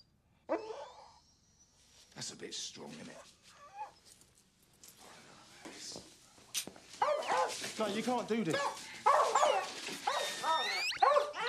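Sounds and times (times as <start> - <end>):
dog squeaking and whining: 0.5 - 1.7, 3.5 - 4.2, 8.6 - 11.4
speech: 2.2 - 3.6, 7.8 - 8.9.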